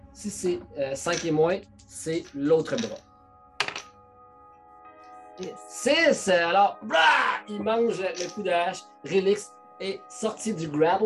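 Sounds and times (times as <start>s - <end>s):
speech: 0.2s - 3.1s, 5.4s - 11.0s
twenty-sided die clattering across a table: 3.6s - 4.0s, 8.2s - 8.4s.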